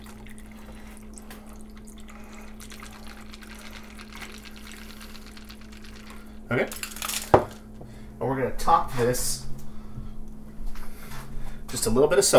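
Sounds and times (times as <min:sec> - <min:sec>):
cocktail strained into an ice-filled highball glass: 0:00.0 - 0:07.2
low constant hum: 0:00.0 - 0:11.6
speech: 0:06.5 - 0:06.8, 0:08.4 - 0:09.4, 0:11.8 - 0:12.3.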